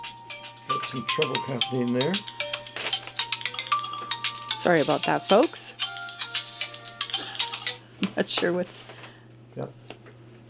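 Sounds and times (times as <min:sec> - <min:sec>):
phone ringing with incoming call from Hawaii: 0:00.3 - 0:07.8
speech: 0:00.9 - 0:02.4, 0:04.6 - 0:05.8, 0:08.1 - 0:08.9, 0:09.6 - 0:09.8.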